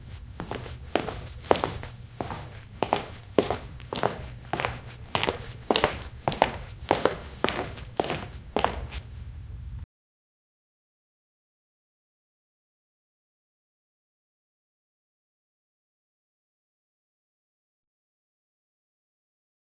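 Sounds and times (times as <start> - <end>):
male leather dress rustling: 0.0 - 9.2.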